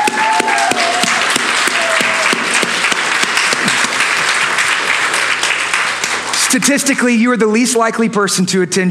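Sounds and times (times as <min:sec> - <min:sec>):
whoops and cheers: 0:00.0 - 0:02.6
sizable audience applauding: 0:00.0 - 0:07.1
speech: 0:06.5 - 0:08.8.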